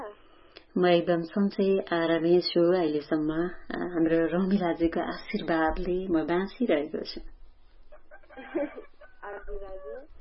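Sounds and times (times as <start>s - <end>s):
speech: 0.8s - 7.4s
fowl calls: 7.9s - 10.1s
rooster crowing: 8.0s - 9.9s.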